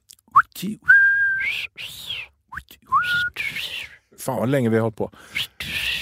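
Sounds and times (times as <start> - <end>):
person whistling a short phrase: 0.3 - 4.0, 5.3 - 6.0
speech: 0.6 - 3.2, 4.2 - 5.5.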